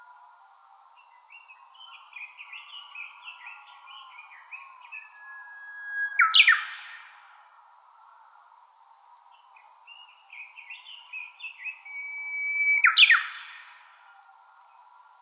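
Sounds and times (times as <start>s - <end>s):
Japanese bush warbler singing: 0.9s - 7.1s, 9.3s - 15.1s.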